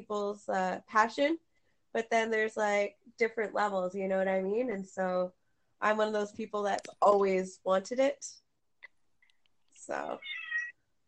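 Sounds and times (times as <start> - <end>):
speech: 0.1 - 8.4, 9.8 - 10.4
cat meowing: 10.2 - 10.8.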